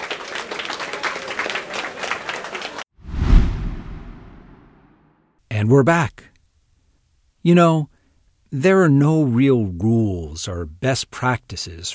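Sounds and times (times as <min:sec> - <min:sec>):
audience clapping for a panel: 0:00.0 - 0:02.9
deep whooshing swell: 0:03.1 - 0:05.0
speech: 0:05.6 - 0:06.3, 0:07.4 - 0:07.9, 0:08.5 - 0:11.9.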